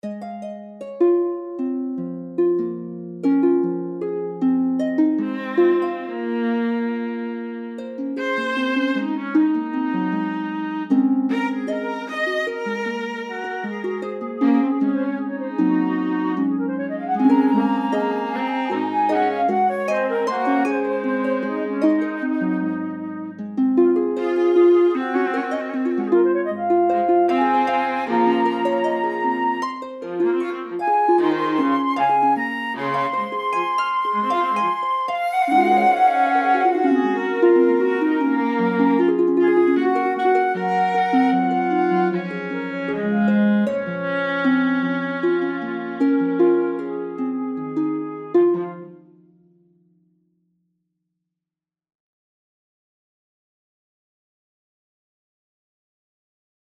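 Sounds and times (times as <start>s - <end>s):
viola: 0.0s - 49.1s
harp: 0.0s - 49.3s
flute: 5.2s - 49.1s.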